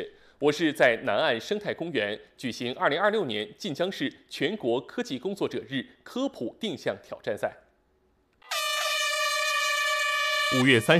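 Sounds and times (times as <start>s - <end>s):
speech: 0.0s - 7.6s, 10.5s - 10.9s
air horn blast signalling the start of an orienteering challenge race in a park: 8.4s - 10.9s.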